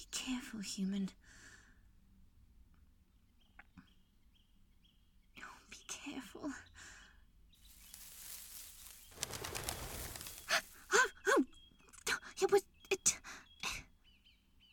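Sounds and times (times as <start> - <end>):
speech: 0.0 - 1.5, 6.0 - 6.7, 12.4 - 13.2
quail flushing with whirring wings: 7.6 - 10.9.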